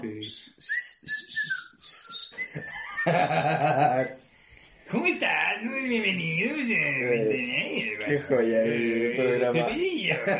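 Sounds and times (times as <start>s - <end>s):
speech: 0.0s - 0.8s, 3.0s - 4.2s, 4.9s - 10.3s
person mimicking a coach's whistle with short shrill whistled notes: 0.0s - 3.1s
laughter: 2.4s - 4.2s, 8.8s - 10.3s.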